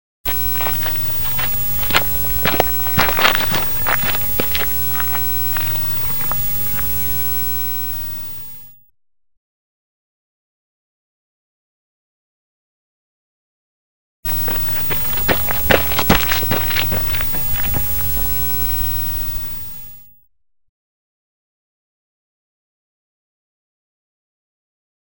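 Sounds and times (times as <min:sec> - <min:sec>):
footsteps walking across a dirt lot: 0:00.3 - 0:07.0, 0:14.3 - 0:19.5.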